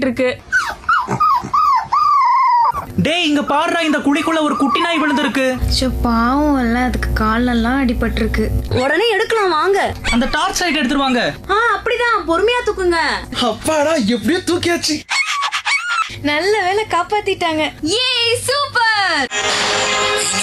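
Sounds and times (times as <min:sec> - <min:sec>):
speech: 0:00.0 - 0:01.6, 0:02.8 - 0:15.2, 0:16.2 - 0:20.4
dog whimpering and crying in high wavering whines: 0:00.4 - 0:03.0, 0:03.8 - 0:05.6, 0:10.0 - 0:11.2, 0:15.0 - 0:16.2.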